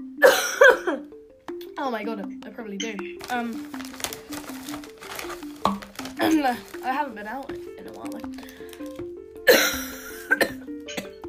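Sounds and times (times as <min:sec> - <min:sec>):
person coughing with something caught in the throat: 0:00.2 - 0:01.1, 0:09.5 - 0:11.2
speech: 0:01.8 - 0:04.0, 0:06.2 - 0:08.4
strained voiced breaths: 0:07.6 - 0:09.1
harsh throat-clearing hack: 0:09.5 - 0:11.2.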